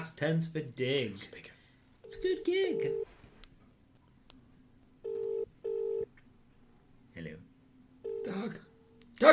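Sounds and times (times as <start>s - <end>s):
speech: 0.0s - 1.5s, 2.1s - 3.2s
low hiss: 0.0s - 9.3s
telephone ringing tone on the line: 2.1s - 3.1s, 5.0s - 6.1s, 8.0s - 8.4s.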